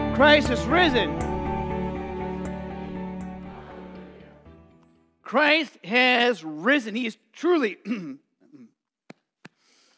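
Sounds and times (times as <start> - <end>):
speech: 0.2 - 1.3, 5.3 - 8.7
person clearing throat: 7.8 - 8.8.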